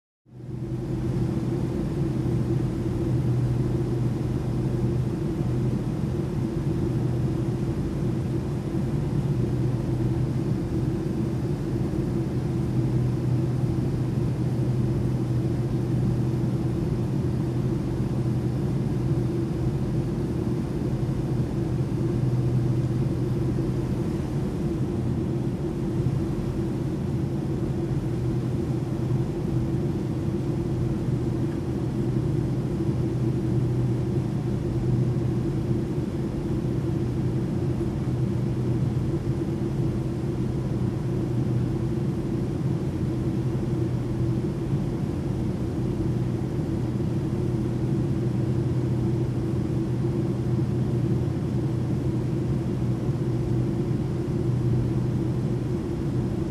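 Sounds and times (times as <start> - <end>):
aircraft cabin ambience: 0.4 - 56.4.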